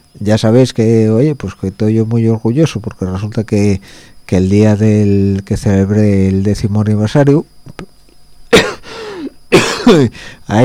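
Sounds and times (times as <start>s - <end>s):
speech: 0.2s - 8.0s, 9.6s - 10.6s
man coughing loud and harsh: 8.5s - 10.2s.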